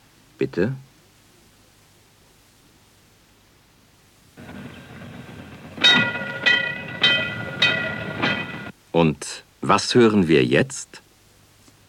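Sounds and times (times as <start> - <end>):
speech: 0.4 - 0.9, 9.7 - 11.0
tram rolling by on rails with a steady whining hum: 4.4 - 8.7
tram wheels clacking over rail joints: 4.4 - 8.7.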